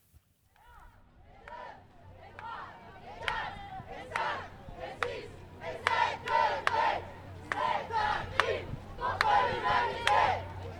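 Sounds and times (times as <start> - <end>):
large crowd chanting at a climate march in Lyon: 1.0 - 10.7
steady outdoor rumble: 1.6 - 10.7
sharp claps or beats: 3.2 - 10.4.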